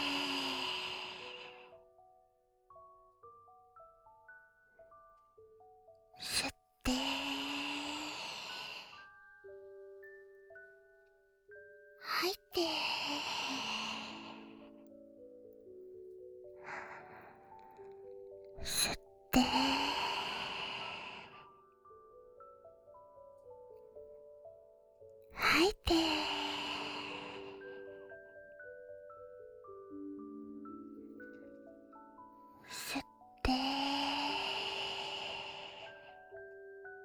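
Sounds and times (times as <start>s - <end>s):
slow breathing in and out: 0.0s - 1.8s, 6.2s - 9.2s, 12.0s - 14.8s, 16.6s - 21.5s, 25.4s - 28.1s, 32.5s - 36.3s.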